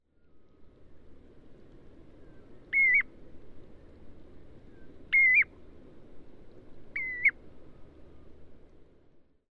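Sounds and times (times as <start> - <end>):
common ringed plover Charadrius hiaticula hiaticula calling in Mayotte: 2.7 - 3.1, 4.7 - 5.5, 7.0 - 7.4.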